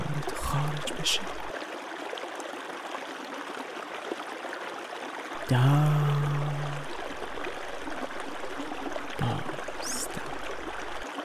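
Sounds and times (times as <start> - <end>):
river flowing with rushing bubbling water: 0.0 - 1.6, 5.3 - 11.1
speech: 0.5 - 1.4, 5.5 - 6.0.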